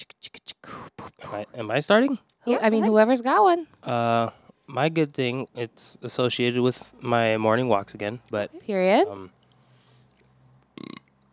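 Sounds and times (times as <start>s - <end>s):
speech: 1.3s - 9.4s
short loud burp: 10.8s - 11.1s.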